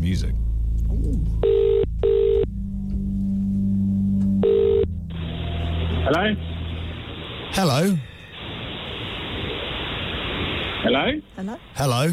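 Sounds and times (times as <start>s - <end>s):
steady low hum: 0.0s - 12.1s
speech: 0.1s - 1.7s, 6.2s - 6.5s, 7.6s - 8.1s, 11.0s - 12.1s
phone ringing: 1.4s - 2.5s, 4.4s - 4.9s.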